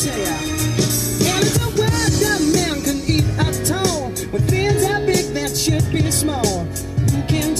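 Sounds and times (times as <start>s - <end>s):
pop song playing on car stereo: 0.0s - 7.5s.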